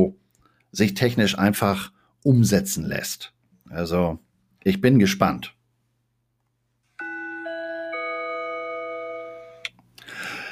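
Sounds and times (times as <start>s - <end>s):
speech: 0.0s - 5.6s
bell chime with three rising notes: 7.0s - 9.7s.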